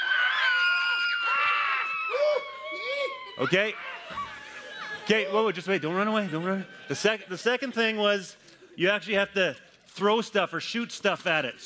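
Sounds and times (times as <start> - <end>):
several people screaming in high piercing voices: 0.0 - 7.3
speech: 3.4 - 3.9, 5.1 - 11.6.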